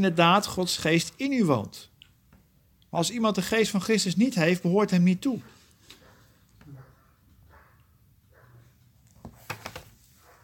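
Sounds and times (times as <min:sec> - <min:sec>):
speech: 0:00.0 - 0:01.9, 0:02.9 - 0:05.6
dog barking: 0:05.4 - 0:08.8, 0:10.2 - 0:10.4.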